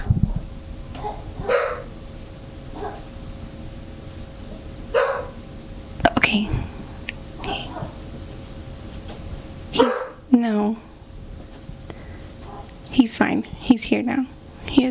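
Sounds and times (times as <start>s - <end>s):
low hum: 0.0s - 14.8s
puppy barking and yipping: 1.0s - 1.9s, 2.8s - 3.0s, 5.0s - 5.4s, 9.8s - 10.2s
speech: 6.3s - 6.7s, 10.4s - 10.9s, 13.1s - 14.8s.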